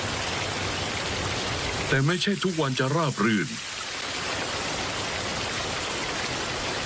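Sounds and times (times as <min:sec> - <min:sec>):
rain falling: 0:00.0 - 0:06.8
speech: 0:01.9 - 0:03.7.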